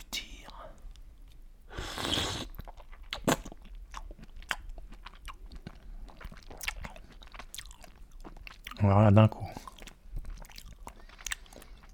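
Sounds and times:
person slurping and swallowing a raw oyster: 0:01.7 - 0:03.6
soft mouth and chewing noises: 0:02.4 - 0:11.9
speech: 0:08.8 - 0:09.4.

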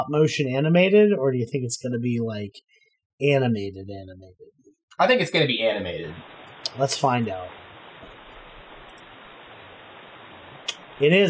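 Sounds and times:
speech: 0:00.0 - 0:07.6, 0:11.0 - 0:11.2
harsh rushing water sound effect in an animated short film: 0:05.7 - 0:11.2.

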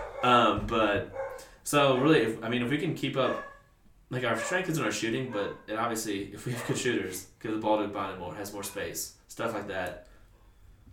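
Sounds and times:
dog barking: 0:00.0 - 0:00.4, 0:01.1 - 0:02.3, 0:03.2 - 0:03.7, 0:04.4 - 0:05.7, 0:06.5 - 0:06.9
dog yelping: 0:00.0 - 0:00.4, 0:01.1 - 0:02.3, 0:03.2 - 0:03.7, 0:05.3 - 0:05.7
speech: 0:00.2 - 0:03.5, 0:04.1 - 0:10.1.

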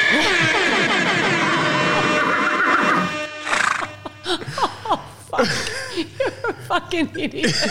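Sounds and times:
laughter: 0:00.0 - 0:02.3, 0:03.8 - 0:07.6
loud horse whinny: 0:02.2 - 0:03.9
speech: 0:05.4 - 0:05.6, 0:06.7 - 0:07.6.

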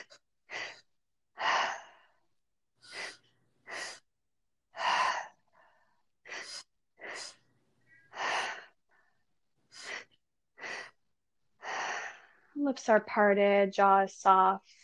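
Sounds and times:
deep three-part inhale and exhale: 0:00.0 - 0:04.1, 0:04.7 - 0:07.4, 0:08.1 - 0:08.9, 0:09.7 - 0:11.0, 0:11.6 - 0:12.5
speech: 0:12.6 - 0:14.8.

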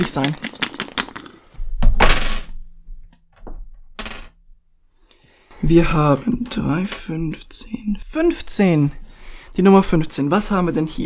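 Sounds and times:
speech: 0:00.0 - 0:00.5, 0:05.6 - 0:11.0
dice rolled in a game clattering across a hard tabletop: 0:00.0 - 0:01.4, 0:02.0 - 0:02.5, 0:04.0 - 0:04.4.

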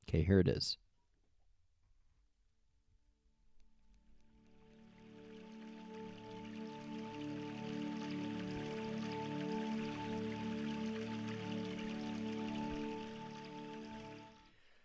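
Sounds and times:
speech: 0:00.1 - 0:00.8
soft steady wash of watery noise: 0:03.5 - 0:14.7
calm ambient ocean-themed music from a meditation app: 0:04.0 - 0:14.6.

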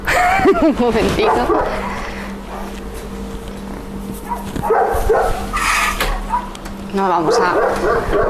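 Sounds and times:
laughter: 0:00.0 - 0:01.2
steady low hum of room noise: 0:00.0 - 0:08.2
speech: 0:00.5 - 0:02.0, 0:06.9 - 0:08.2
dog barking and yipping: 0:01.2 - 0:02.8, 0:04.2 - 0:08.2.

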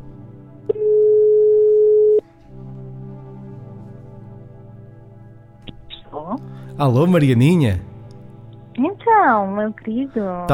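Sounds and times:
telephone ringing tone as a call is placed: 0:00.7 - 0:02.2
speech: 0:06.8 - 0:07.9, 0:09.2 - 0:10.5.

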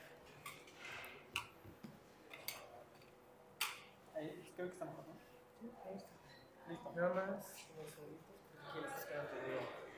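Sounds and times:
chair being shifted with a knock and scraping drag: 0:00.6 - 0:01.2
speech: 0:04.2 - 0:09.9.

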